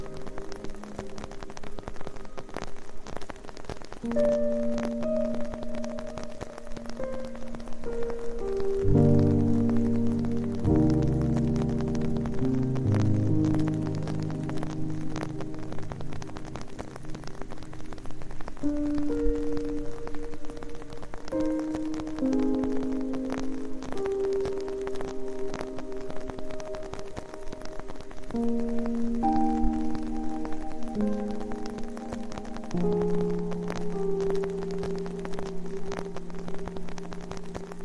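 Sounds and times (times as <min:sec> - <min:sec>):
evening rain hiss: 0:00.0 - 0:37.8.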